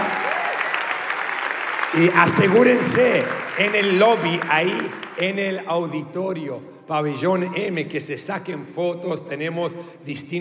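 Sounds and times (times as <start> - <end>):
faint voice whooping: 0.0 - 5.4
crowd applauding: 0.0 - 6.1
laughter: 0.0 - 8.6
speech: 1.9 - 10.3.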